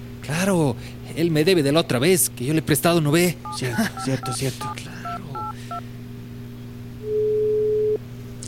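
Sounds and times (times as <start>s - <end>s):
speech: 0.3s - 4.9s
electronic phone ringback tone: 3.5s - 5.8s
phone keypad dialing beeps: 3.5s - 5.8s
laughter: 3.6s - 4.6s.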